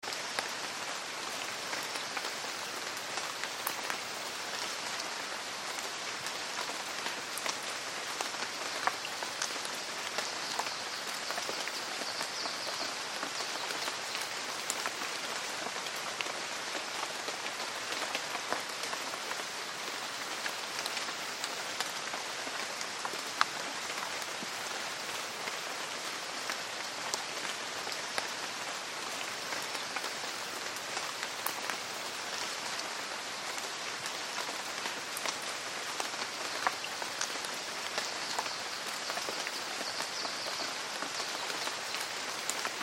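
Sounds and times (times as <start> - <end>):
rain forest ambience: 0.0 - 42.8.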